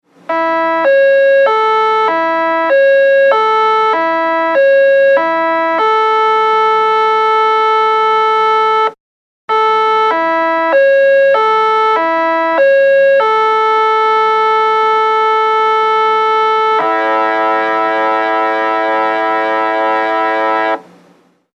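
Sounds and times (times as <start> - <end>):
music horn: 0.3 - 20.9.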